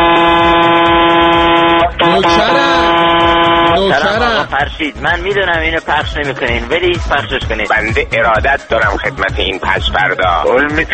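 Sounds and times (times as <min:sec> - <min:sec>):
semi-trailer truck air horn blasts: 0:00.0 - 0:04.5
speech: 0:04.6 - 0:10.9.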